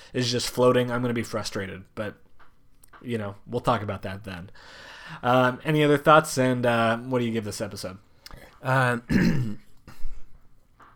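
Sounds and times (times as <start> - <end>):
speech: 0.1 - 2.2, 3.0 - 9.6
person clearing throat with a voiced rumble: 9.1 - 9.7
rough cough-like burst and quieter rasp: 9.1 - 9.7.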